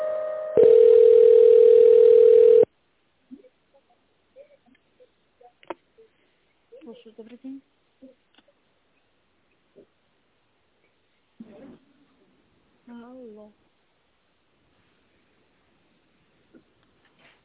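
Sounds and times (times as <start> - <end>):
telephone line tones while a call is being transferred: 0.6 - 2.7
speech: 7.2 - 7.7.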